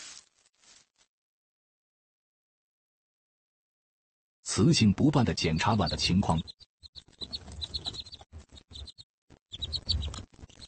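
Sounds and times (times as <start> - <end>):
speech: 4.5 - 6.7
newly hatched baby birds chirping: 5.3 - 10.6.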